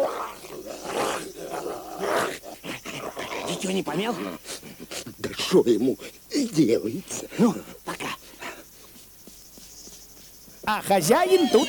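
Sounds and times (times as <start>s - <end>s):
dog growling and snarling during mock fight with wolf: 0.0s - 5.5s
speech: 3.6s - 4.6s, 5.5s - 7.7s, 10.7s - 11.6s.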